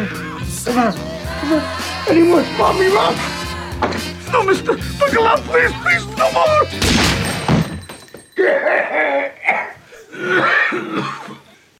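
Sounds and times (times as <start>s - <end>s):
speech: 0.0s - 7.1s
intense harsh acted coughing from a film clip: 8.4s - 11.6s.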